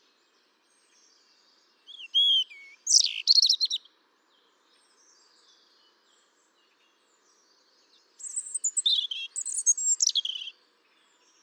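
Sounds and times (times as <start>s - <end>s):
European robin Erithacus rubecula singing whistles and trills: 0.8s - 3.9s, 8.2s - 10.6s.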